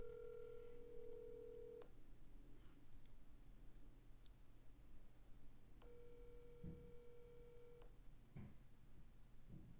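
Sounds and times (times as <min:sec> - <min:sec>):
phone line ringback tones of an unanswered call: 0:00.0 - 0:01.8, 0:05.9 - 0:07.8
low hum: 0:00.0 - 0:09.7.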